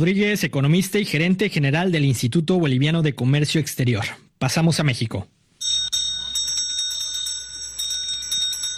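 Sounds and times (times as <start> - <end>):
speech: 0.0 - 5.4
bell ringing in the Senate chamber: 5.6 - 8.7.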